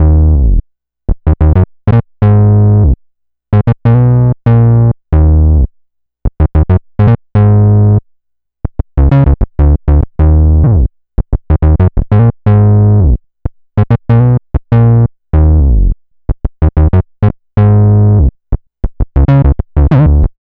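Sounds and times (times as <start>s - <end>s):
synth bass loop in E flat minor: 0.0s - 0.6s, 1.2s - 5.7s, 6.3s - 8.0s, 9.0s - 13.2s, 13.8s - 18.3s, 19.0s - 20.4s.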